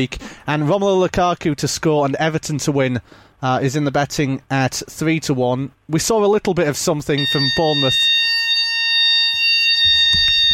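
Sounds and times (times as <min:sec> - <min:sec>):
speech: 0:00.0 - 0:08.4
fire alarm sounding during a test: 0:07.2 - 0:10.5
soft low knocks and thuds: 0:09.8 - 0:10.5.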